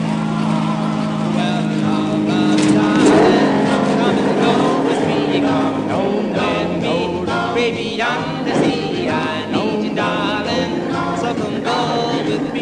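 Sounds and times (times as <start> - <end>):
car engine humming while driving: 0.0 - 12.5
clatter and bumps: 1.4 - 6.0, 7.7 - 10.2
people talking: 1.4 - 12.5.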